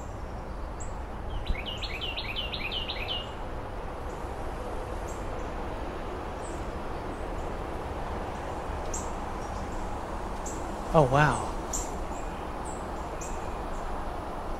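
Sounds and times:
steady wind-like hiss: 0.0 - 14.5
blue jays calling outdoors in a backyard: 10.9 - 12.0
speech: 11.0 - 11.5.

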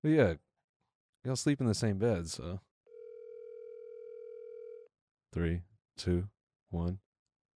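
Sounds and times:
speech: 0.0 - 0.5, 1.2 - 2.7, 5.3 - 7.0
ringback tone of an outgoing telephone call: 2.9 - 4.9.

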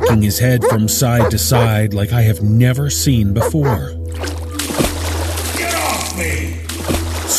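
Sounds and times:
speech: 0.1 - 4.4
water sloshing: 3.5 - 7.3
object plunging into water with a splash: 4.1 - 5.7, 6.6 - 7.3.

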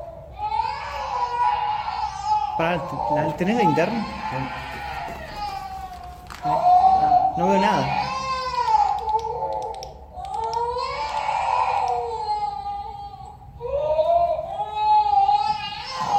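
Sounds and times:
small child crying in an abandoned sanatorium: 0.0 - 16.1
speech: 2.6 - 4.7, 6.4 - 6.7, 7.4 - 8.0.

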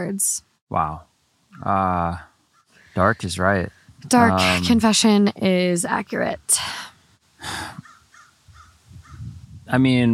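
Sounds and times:
speech: 0.0 - 2.3, 3.0 - 7.8, 9.7 - 10.1
crow cawing: 7.8 - 8.7.

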